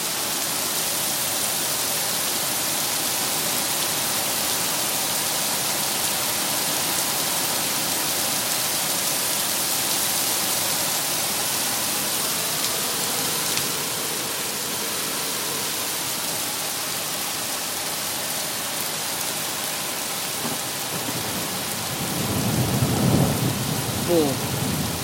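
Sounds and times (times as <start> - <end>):
dense rain pattering on surfaces: 0.0 - 25.0
low rolling thunder during rain: 20.4 - 25.0.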